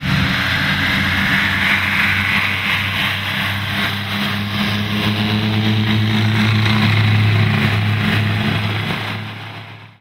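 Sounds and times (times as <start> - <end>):
Vickers Vimy airplane: 0.0 - 9.9.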